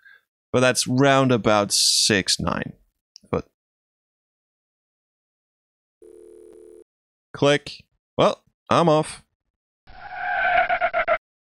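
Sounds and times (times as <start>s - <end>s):
speech: 0.5s - 3.5s, 7.4s - 9.2s
synthesized video game car screech as a red sports car runs a red light: 9.9s - 11.2s.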